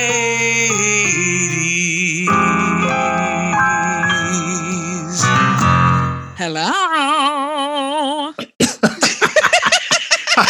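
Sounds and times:
speech: 0.0 - 1.2
steady wavering vocal tone: 0.0 - 8.4
harsh coughing fit: 8.4 - 9.1
laughter: 8.6 - 10.4.

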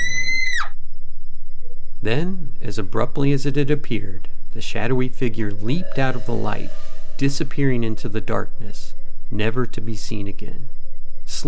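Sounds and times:
shrill high-pitched scream: 0.0 - 0.8
low steady hum: 0.8 - 11.4
speech: 2.0 - 10.7.

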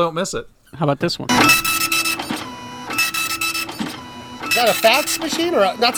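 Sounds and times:
speech: 0.0 - 1.8, 4.6 - 5.9
dot matrix printer printing: 1.3 - 5.9.

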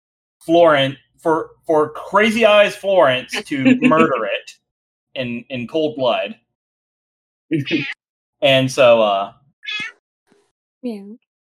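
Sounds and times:
speech: 0.4 - 4.6, 5.2 - 6.4, 7.5 - 9.9, 10.8 - 11.2
laughter: 3.3 - 4.4, 7.5 - 7.9
cat meowing: 7.6 - 8.0, 9.6 - 10.0.

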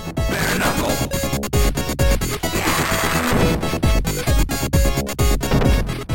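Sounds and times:
loud dense chaotic electronic video game music with pounding low beats: 0.0 - 6.1.

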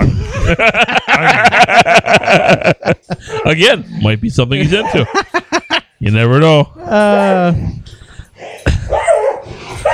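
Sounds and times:
laughter: 0.0 - 3.8, 4.6 - 6.0
speech: 0.5 - 2.8, 3.5 - 5.4, 6.0 - 7.7
dog sharp bark: 8.4 - 9.9.

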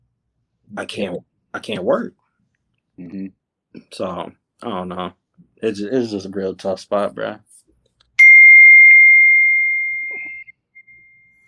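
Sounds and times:
speech: 0.7 - 2.2, 3.0 - 7.5
text message notification chime: 8.2 - 11.4.

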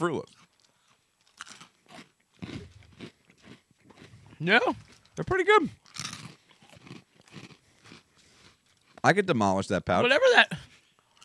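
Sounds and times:
speech: 0.0 - 0.5, 4.4 - 5.8, 9.0 - 10.7
chewing: 0.2 - 9.1, 10.7 - 11.2
giant jumbo Fruit Loops cereal crunching as a snack: 0.3 - 5.2, 5.8 - 9.1.

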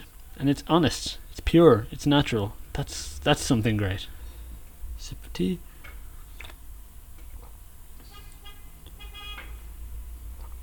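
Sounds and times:
speech: 0.4 - 4.2, 5.0 - 5.7
car horn honks: 8.1 - 9.7.

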